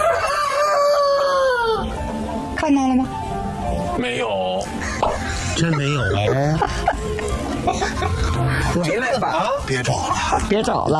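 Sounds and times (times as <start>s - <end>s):
rooster crowing inside a henhouse: 0.0s - 2.0s
speech: 2.7s - 3.2s, 4.0s - 4.8s, 5.6s - 6.9s, 8.0s - 10.9s
laughter: 4.8s - 10.9s.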